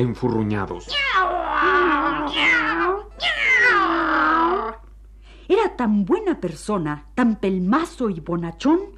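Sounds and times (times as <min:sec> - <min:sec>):
speech: 0:00.0 - 0:02.6, 0:05.5 - 0:08.9
cat meowing: 0:00.8 - 0:04.8.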